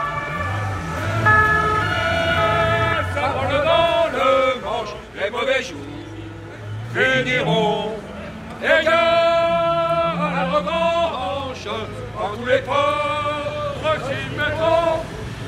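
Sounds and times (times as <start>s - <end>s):
siren of a police bus wailing as it pulls away: 0.0s - 3.8s
crowd shouting and chattering: 0.0s - 15.4s
speech: 7.0s - 8.0s.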